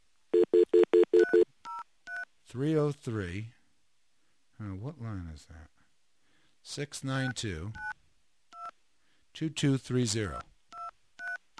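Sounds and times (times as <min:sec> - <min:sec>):
telephone touch-tone dialing: 0:00.4 - 0:02.2, 0:10.8 - 0:11.5
speech: 0:02.5 - 0:03.6, 0:04.6 - 0:05.8, 0:06.6 - 0:08.0, 0:09.4 - 0:10.5.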